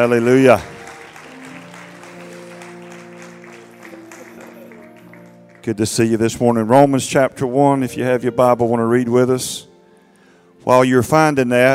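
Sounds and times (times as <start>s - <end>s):
speech: 0.0s - 0.7s, 5.6s - 9.7s, 10.6s - 11.7s
audience clapping in praise: 0.0s - 6.1s
sustained organ or keyboard tones: 0.0s - 9.7s.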